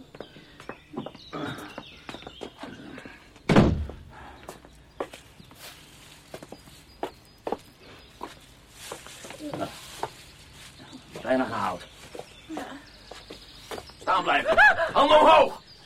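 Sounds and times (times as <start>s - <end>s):
irregular footsteps: 0.0s - 14.7s
door opened with a heavy thud: 3.5s - 4.1s
laughter: 14.2s - 15.6s.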